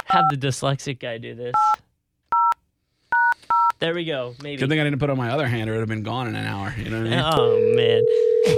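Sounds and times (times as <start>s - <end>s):
speech: 0.1s - 1.9s, 3.8s - 8.5s
telephone dial tone: 7.4s - 8.5s.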